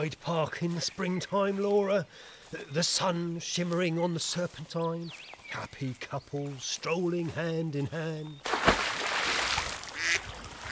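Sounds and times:
speech: 0.0 - 8.7
ducks quacking: 10.0 - 10.7.

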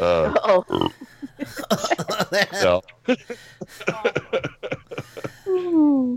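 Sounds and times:
low drawn-out burp after a meal with peppers: 0.0 - 1.0
laughter: 0.0 - 5.6
man talking on live radio: 2.2 - 5.2.

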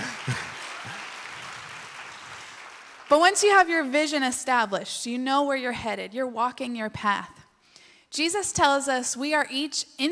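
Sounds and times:
crowd applauding: 0.0 - 3.7
speech: 3.1 - 7.4, 8.1 - 10.1.

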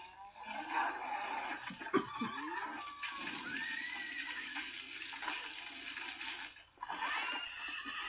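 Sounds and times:
horses neighing: 0.4 - 5.4, 6.8 - 8.0.

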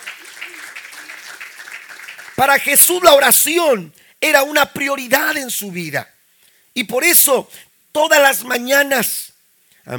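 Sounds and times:
audience applause: 0.0 - 2.8
speech: 2.4 - 6.2, 6.8 - 9.9.

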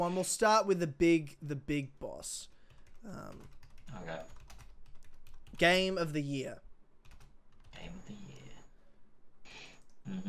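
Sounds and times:
speech: 0.0 - 4.4, 5.6 - 6.6, 10.1 - 10.2
typing on a computer keyboard into a shared online document: 2.7 - 5.6, 7.0 - 7.9.

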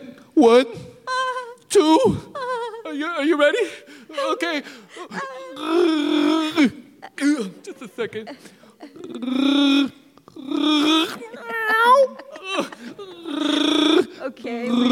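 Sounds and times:
speech: 0.4 - 0.9, 1.7 - 11.3, 14.2 - 14.9
person playing a lion imitating a roar: 5.5 - 6.8, 9.0 - 11.2, 12.0 - 14.9
laughter: 7.0 - 9.2, 10.7 - 14.1.

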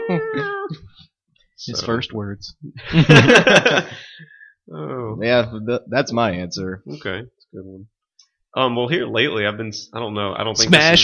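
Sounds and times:
person voicing a drawn-out cat meow: 0.0 - 0.9
speech: 0.1 - 11.0
laughter: 2.8 - 4.2.

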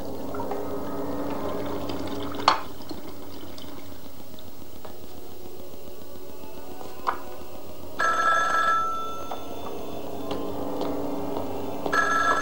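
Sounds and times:
steady low hum: 0.0 - 12.3
telephone ringing: 8.0 - 12.3.

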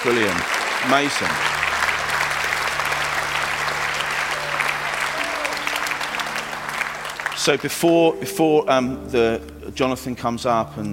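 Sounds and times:
speech: 0.0 - 1.8, 7.4 - 10.9
audience applauding: 0.0 - 8.2.

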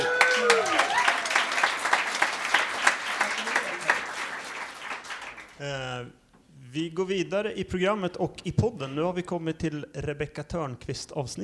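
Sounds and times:
audience applauding: 0.0 - 5.6
speech: 6.8 - 11.4.

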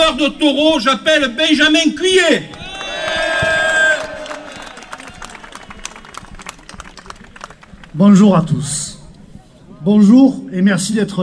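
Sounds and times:
speech: 0.1 - 2.6, 8.0 - 9.0, 9.8 - 11.2
large crowd yelling and cheering at a rally: 2.4 - 7.8
scattered clapping at a rally: 2.4 - 8.0.

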